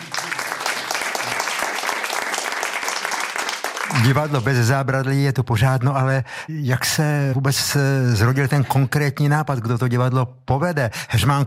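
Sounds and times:
room full of people clapping: 0.0 - 4.7
speech: 4.0 - 11.4.

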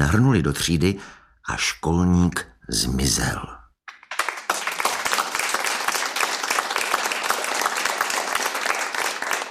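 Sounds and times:
speech: 0.0 - 3.6
crowd applauding: 3.9 - 9.5.

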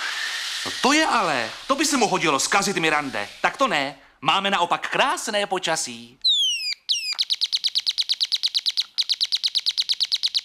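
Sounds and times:
speech: 0.8 - 6.2
birds singing: 6.2 - 10.4.

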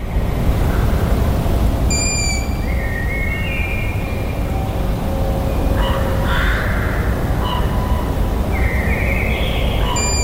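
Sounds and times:
steady rushing noise: 0.0 - 10.2
two owls calling at night: 1.9 - 2.7, 9.8 - 10.2.

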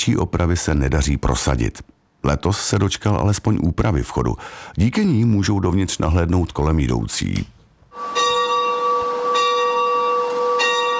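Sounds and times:
speech: 0.0 - 8.2
church bell ringing: 8.0 - 10.9.

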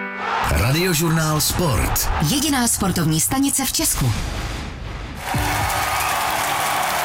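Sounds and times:
large crowd applauding: 0.2 - 1.1, 5.2 - 7.0
speech: 0.5 - 4.6.

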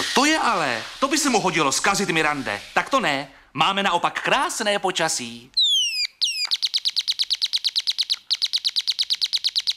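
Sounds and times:
speech: 0.2 - 5.6
bird singing: 5.5 - 9.7.

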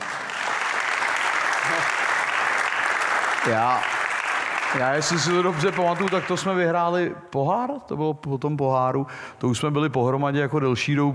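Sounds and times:
audience applause: 0.0 - 6.6
speech: 3.4 - 4.0, 4.7 - 11.1.

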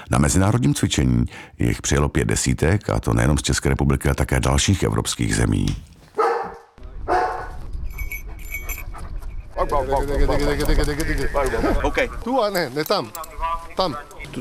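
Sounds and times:
speech: 0.1 - 5.9, 9.8 - 14.3
trained mountain rescue search dog barking in mountain terrain: 6.2 - 7.6.

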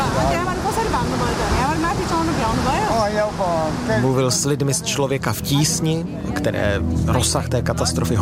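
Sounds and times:
rushing water of a flooded mountain river: 0.0 - 6.0
speech: 3.1 - 8.1.

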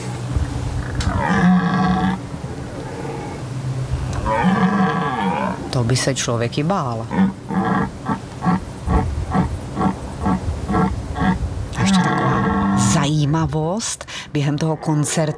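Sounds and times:
European red deer stag bellowing: 0.7 - 6.0, 6.8 - 13.2
speech: 5.8 - 7.7, 13.4 - 15.3.

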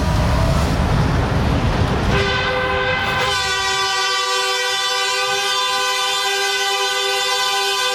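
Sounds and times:
rumbling rail noise: 0.0 - 7.9
train horn blaring: 2.1 - 7.9.

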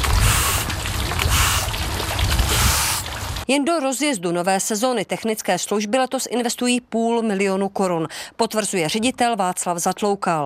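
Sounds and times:
steady rushing water: 0.0 - 3.5
speech: 3.5 - 10.4.

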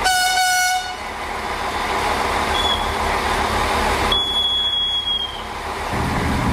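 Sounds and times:
train horn blast: 0.0 - 1.0
train rumbling along a mountain railway track: 0.0 - 6.5
thin metallic train wheel squeals on curves: 2.5 - 3.0, 4.1 - 5.5.

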